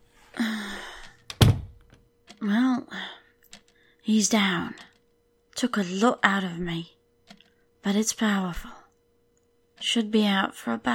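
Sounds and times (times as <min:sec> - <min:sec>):
door shutting with a solid thunk: 0:01.3 - 0:02.0
speech: 0:02.4 - 0:03.0, 0:04.1 - 0:04.9, 0:05.6 - 0:07.0, 0:07.8 - 0:08.8, 0:09.8 - 0:10.9.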